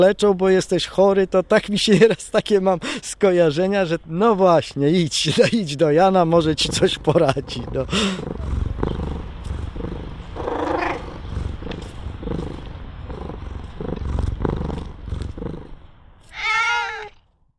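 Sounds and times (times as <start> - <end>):
speech: 0.0 - 8.6
cat purring: 6.3 - 15.9
cat meowing: 10.4 - 11.1, 16.2 - 17.2.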